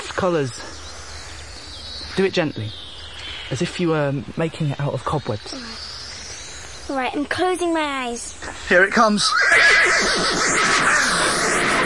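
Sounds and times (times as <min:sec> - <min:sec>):
steady hiss: 0:00.0 - 0:11.8
speech: 0:00.2 - 0:00.7, 0:02.2 - 0:02.8, 0:03.5 - 0:05.8, 0:06.9 - 0:11.8
horse whinnying: 0:09.3 - 0:11.8.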